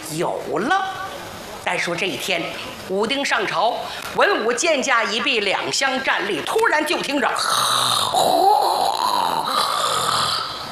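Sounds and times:
speech: 0.1 - 1.0, 1.6 - 9.1
storyteller's voice imitating a long rasping snore: 7.4 - 10.7.

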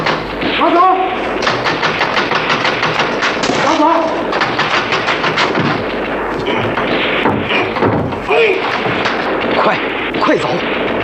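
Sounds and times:
gunfire from a security militia: 0.0 - 11.0
people shouting: 7.5 - 9.1.

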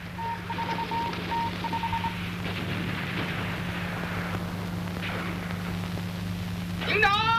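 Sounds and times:
rough rumble: 0.0 - 7.3
steady low hum: 0.0 - 7.3
short electronic beeps from a telephone being dialed: 0.2 - 2.2.

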